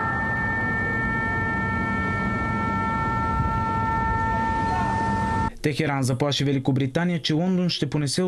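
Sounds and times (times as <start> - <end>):
air raid sirens wailing in Bahrain as Iran attacks American bases: 0.0 - 5.5
constant low rumble of outdoor noise: 0.0 - 5.6
speech: 5.6 - 8.2.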